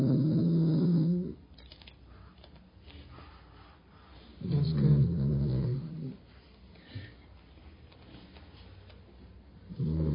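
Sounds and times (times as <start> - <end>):
sleeping dog breathing heavily and snoring: 0.0 - 1.4, 4.4 - 6.2, 9.7 - 10.1.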